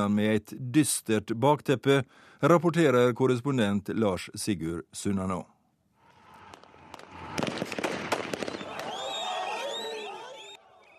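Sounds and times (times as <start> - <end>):
speech: 0.0 - 5.5
gunshots from police firing on protesters: 6.4 - 9.3
crowd of protesters shouting and screaming: 8.4 - 10.9.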